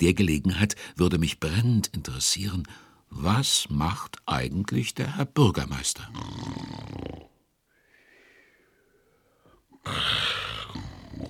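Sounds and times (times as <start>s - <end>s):
speech: 0.0s - 7.3s, 9.8s - 11.2s
man snoring while napping during his midday lunch break: 6.1s - 7.3s, 9.8s - 11.2s.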